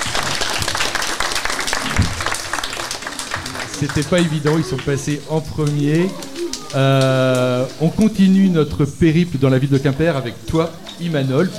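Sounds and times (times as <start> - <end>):
audience applauding: 0.0 - 7.8
speech: 3.8 - 11.5.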